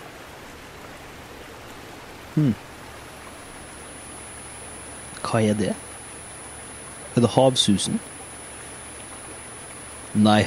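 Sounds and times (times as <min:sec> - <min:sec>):
faint thin high whine: 0:00.0 - 0:10.4
steady rushing hiss simulating tinnitus: 0:00.0 - 0:10.4
murmured voice: 0:02.4 - 0:02.6
speech: 0:02.4 - 0:02.7, 0:05.3 - 0:05.9, 0:07.2 - 0:08.1, 0:10.1 - 0:10.4.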